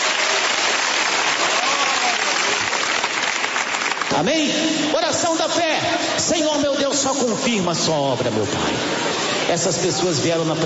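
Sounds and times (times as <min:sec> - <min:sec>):
crowd clapping hands: 0:00.0 - 0:04.9
speech: 0:04.1 - 0:10.6.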